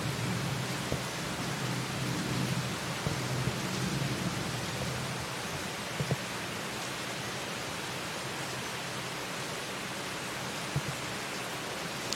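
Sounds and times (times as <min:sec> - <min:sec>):
faint low rumble of thunder: 0:00.0 - 0:05.2
heavy rain in Singapore: 0:00.0 - 0:12.1.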